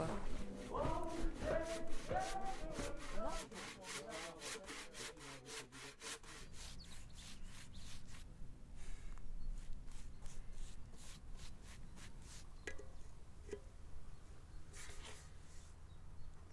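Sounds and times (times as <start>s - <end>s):
faint voice murmuring: 0.0s - 5.6s
paintbrush scraping across a wooden signboard: 0.0s - 16.5s.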